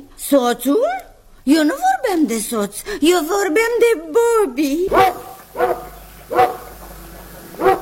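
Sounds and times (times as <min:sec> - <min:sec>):
speech: 0:00.3 - 0:06.5
dog barking: 0:04.9 - 0:06.8, 0:07.6 - 0:07.8.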